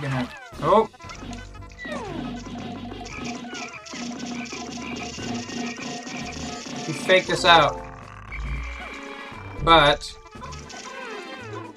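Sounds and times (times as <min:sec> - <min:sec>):
speech: 0:00.2 - 0:01.0, 0:07.1 - 0:07.8, 0:09.6 - 0:10.2
frog croaking: 0:07.8 - 0:09.6.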